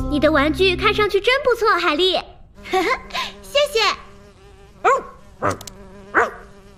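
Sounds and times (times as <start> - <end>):
speech: 0.2 - 3.1, 3.7 - 4.0, 4.8 - 6.3
bee buzzing by an open window: 2.5 - 6.7.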